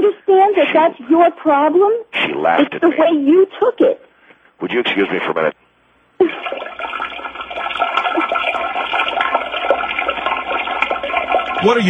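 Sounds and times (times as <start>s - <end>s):
speech: 0.8s - 5.6s, 11.6s - 11.8s
toilet flushing with gurgling water: 6.2s - 11.8s.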